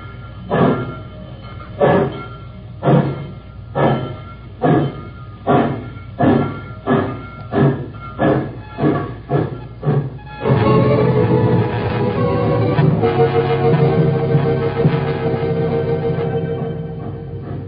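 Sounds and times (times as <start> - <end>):
steam train chuffing out of a station in the rain: 0.0 - 17.6.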